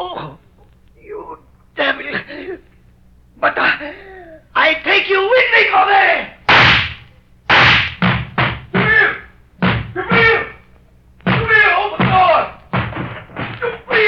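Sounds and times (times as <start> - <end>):
man shouting: 4.6 - 6.4, 8.7 - 9.3, 10.0 - 10.7, 11.3 - 12.6, 13.7 - 14.0
heavy fists pounding on a door: 6.5 - 10.5, 11.2 - 14.0.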